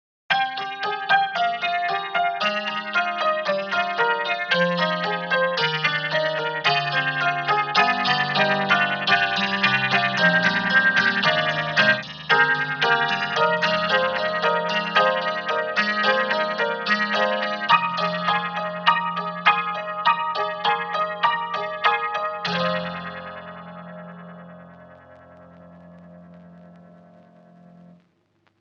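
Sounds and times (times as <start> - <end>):
tack piano on vinyl: 0.3 - 28.1.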